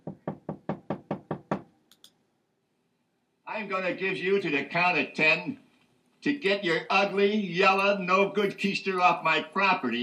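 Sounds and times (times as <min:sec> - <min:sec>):
firm knocks on a door: 0:00.0 - 0:01.7
speech: 0:03.6 - 0:05.6, 0:06.2 - 0:10.0.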